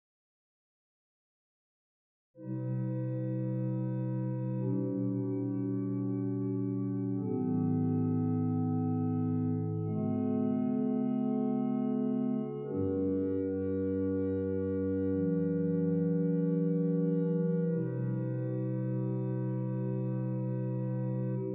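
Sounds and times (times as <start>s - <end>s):
pipe organ bourdon stop on the Hauptwerk: 2.4s - 21.5s.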